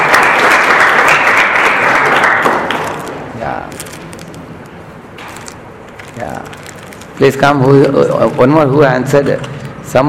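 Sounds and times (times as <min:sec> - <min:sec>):
crowd applauding: 0:00.0 - 0:03.2
speech: 0:07.2 - 0:10.0.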